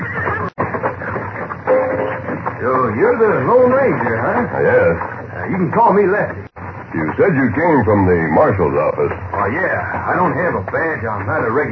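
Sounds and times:
saddled horse whinnying and neighing: 0.0 - 1.2
speech: 2.6 - 11.7.

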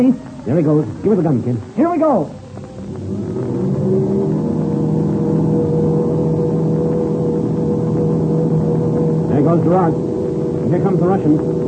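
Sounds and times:
speech: 0.0 - 2.4, 9.5 - 10.1, 10.7 - 11.6
English aircraft engines running up for takeoff in an air race: 2.4 - 11.6.

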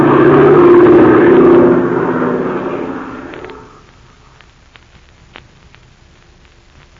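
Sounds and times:
airplane propeller engine roar during aerial dogfight: 0.0 - 4.4.

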